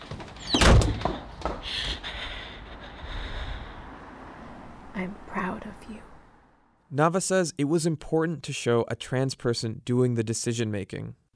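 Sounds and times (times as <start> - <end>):
door shutting as someone walks out: 0.0 - 1.6
speech: 5.0 - 6.2, 6.9 - 11.3.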